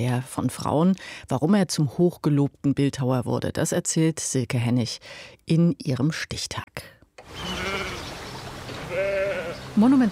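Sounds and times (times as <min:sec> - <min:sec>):
speech: 0:00.0 - 0:07.7, 0:09.8 - 0:10.1
sheep bleating while grazing on a grassy southern English estate: 0:07.4 - 0:08.1, 0:08.8 - 0:09.7.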